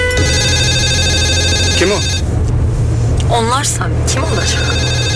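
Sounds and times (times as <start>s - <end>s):
phone ringing tone during an outgoing call: 0.2s - 2.4s, 4.0s - 5.1s
speech: 1.8s - 2.2s, 3.3s - 5.1s.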